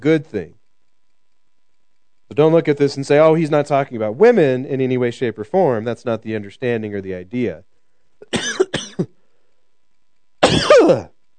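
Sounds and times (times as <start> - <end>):
speech: 0.0 - 0.6, 2.3 - 9.2, 10.5 - 11.2
person coughing from a chest cold: 8.2 - 9.2, 10.4 - 11.1
person rasping throat clearing: 8.2 - 9.2, 10.4 - 11.2.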